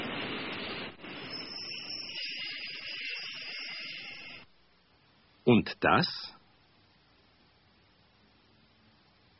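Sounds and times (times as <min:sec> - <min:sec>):
subway train arriving with a roar and metallic hiss: 0:01.0 - 0:04.4
speech: 0:05.5 - 0:06.4.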